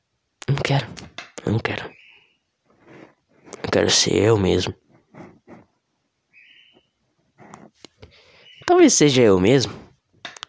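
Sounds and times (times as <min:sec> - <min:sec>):
speech: 0:00.5 - 0:02.0, 0:03.7 - 0:04.8, 0:08.7 - 0:09.8
small bird calling loudly: 0:01.4 - 0:03.6, 0:06.3 - 0:08.9.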